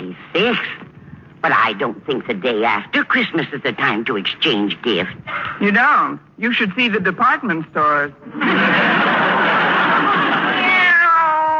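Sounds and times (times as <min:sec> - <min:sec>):
speech: 0:00.4 - 0:00.8, 0:01.4 - 0:09.3
laughter: 0:08.2 - 0:10.8
cat letting out a long, loud, raspy meow rising into a wail: 0:10.5 - 0:11.5.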